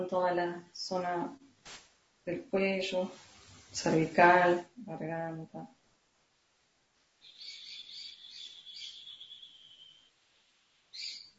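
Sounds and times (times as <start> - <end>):
speech: 0.0 - 5.8
small birds chirping and trilling in the morning: 7.2 - 11.3.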